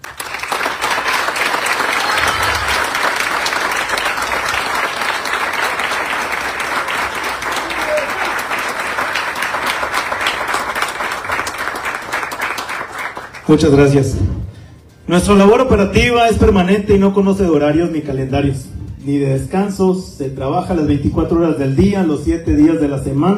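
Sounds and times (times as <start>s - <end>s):
applause from authorities and citizens in Parral: 0.0s - 13.5s
speech: 13.5s - 14.4s, 15.1s - 23.3s.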